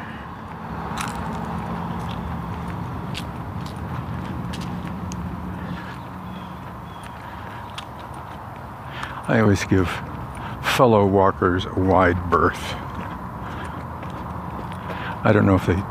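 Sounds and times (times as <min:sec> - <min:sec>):
road traffic rumbling: 0:00.0 - 0:15.8
speech: 0:09.3 - 0:10.1, 0:10.8 - 0:12.8, 0:15.2 - 0:15.8.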